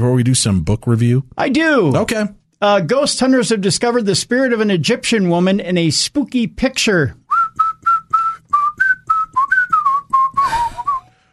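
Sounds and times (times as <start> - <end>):
speech: 0.0 - 7.2
person whistling a catchy pop melody: 7.3 - 11.1
breathy rush of air: 10.4 - 11.3.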